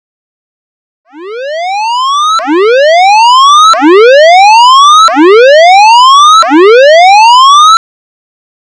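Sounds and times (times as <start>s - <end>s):
standard emergency warning signal siren wailing: 1.1s - 7.8s.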